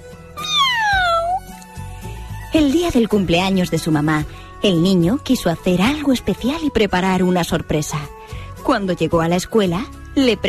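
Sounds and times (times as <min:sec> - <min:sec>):
soft steady music: 0:00.0 - 0:10.4
cat meowing: 0:00.4 - 0:01.6
speech: 0:02.6 - 0:10.4.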